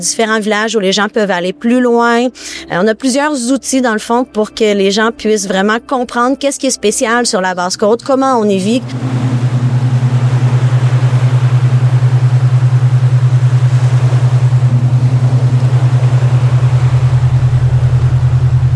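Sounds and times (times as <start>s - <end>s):
speech: 0.0s - 9.3s
cargo ship engine droning at sea: 8.4s - 18.7s
water noise at sea: 8.7s - 18.7s.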